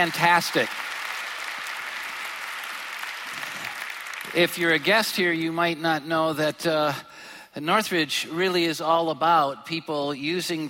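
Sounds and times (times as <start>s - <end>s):
speech: 0.0s - 0.9s, 4.4s - 10.6s
audience applauding for performers: 0.0s - 5.4s.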